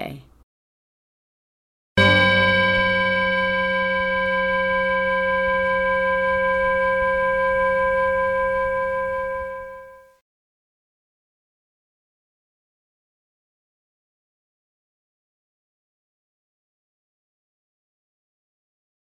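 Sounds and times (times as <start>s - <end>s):
bell rung to end practice: 2.0s - 10.1s.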